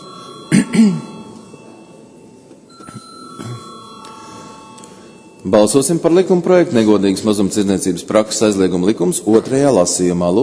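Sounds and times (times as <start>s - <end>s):
parliament electronic bell ringing before a vote: 0.0s - 6.8s
speech: 0.5s - 1.1s, 5.5s - 10.4s
throat clearing: 0.5s - 1.1s, 2.9s - 3.7s.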